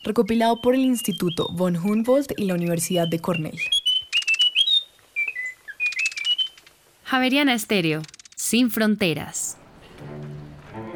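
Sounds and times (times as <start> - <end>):
speech: 0.0 - 3.8, 7.1 - 10.4
Munchique wood wren singing whistled notes and trills: 0.0 - 6.7.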